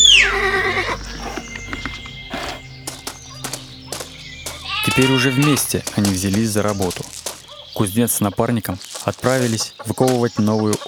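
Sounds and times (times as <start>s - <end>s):
horse whinnying: 0.0s - 2.7s, 4.7s - 5.6s
faint shuffling: 0.0s - 10.8s
speech: 5.0s - 7.2s, 7.8s - 10.8s.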